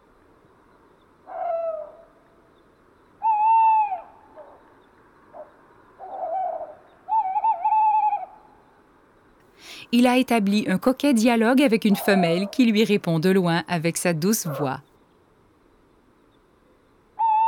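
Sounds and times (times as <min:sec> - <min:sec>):
faint steady hiss: 0:00.0 - 0:07.1, 0:08.2 - 0:17.3
male tawny owl hooting insistently: 0:01.3 - 0:02.1, 0:03.2 - 0:04.6, 0:05.4 - 0:08.4, 0:17.2 - 0:17.4
speech: 0:09.9 - 0:14.9.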